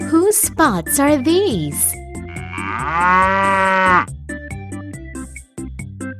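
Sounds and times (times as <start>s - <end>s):
bouncy rhythmic musical jingle with steady beats: 0.1s - 2.0s
speech: 0.6s - 2.0s, 2.8s - 4.1s
cow mooing: 2.3s - 4.1s.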